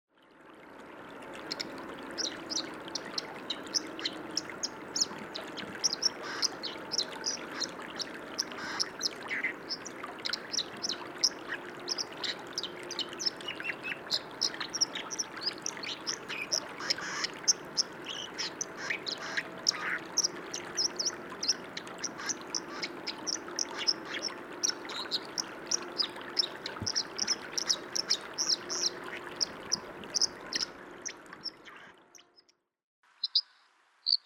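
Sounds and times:
dipper bird: 1.5 - 32.0.

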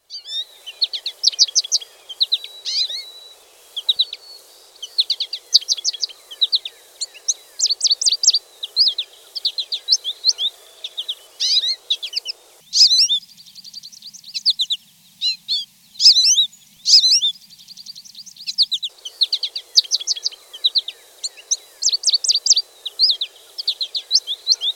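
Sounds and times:
American goldfinch calling: 0.1 - 13.2, 14.3 - 17.3, 18.2 - 24.7.

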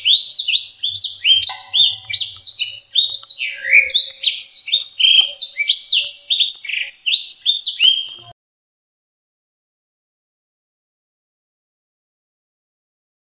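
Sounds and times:
black-throated seedeater singing a long rapid warble: 0.0 - 8.3.

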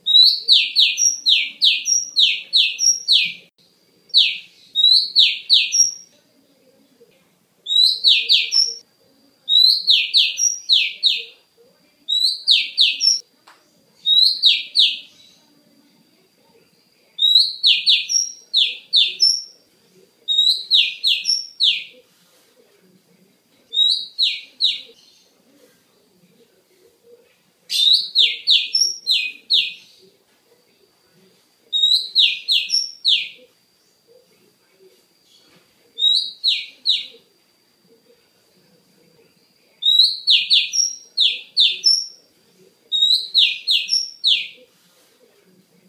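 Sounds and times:
female magpie-robin singing: 0.0 - 6.2, 7.6 - 8.8, 9.4 - 11.4, 12.1 - 13.3, 14.0 - 16.0, 16.7 - 19.7, 20.3 - 22.0, 23.5 - 25.4, 27.7 - 30.1, 31.7 - 34.4, 35.2 - 37.3, 39.4 - 42.3, 42.9 - 44.7.

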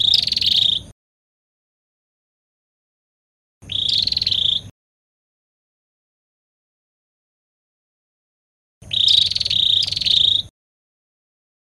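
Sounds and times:
prinia song: 3.6 - 4.7, 8.8 - 10.5.

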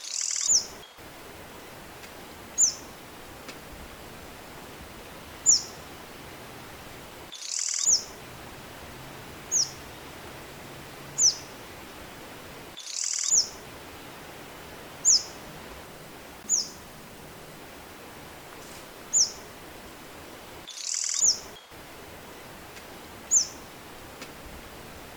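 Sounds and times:
sunbird giving piercing high calls: 0.1 - 25.1
short crackly noise bursts: 0.8 - 12.8, 13.3 - 20.7, 21.3 - 25.1.

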